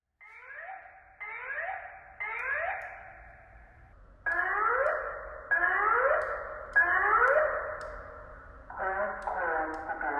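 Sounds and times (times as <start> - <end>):
filtered door alarm: 0.2 - 10.1.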